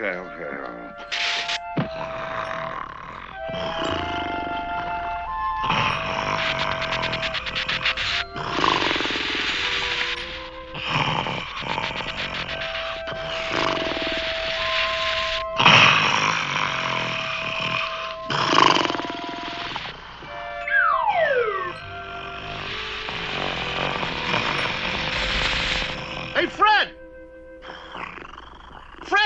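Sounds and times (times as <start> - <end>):
speech: 0.0 - 1.2
loud exaggerated snoring: 1.0 - 27.0, 27.6 - 29.1.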